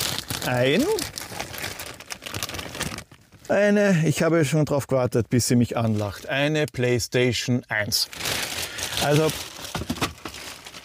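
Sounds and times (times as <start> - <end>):
plastic bag crinkling as it is opened while tidying up: 0.0 - 3.5, 7.9 - 10.8
speech: 0.4 - 1.2, 3.5 - 8.2, 9.0 - 9.5
person vocalizing: 0.5 - 1.1.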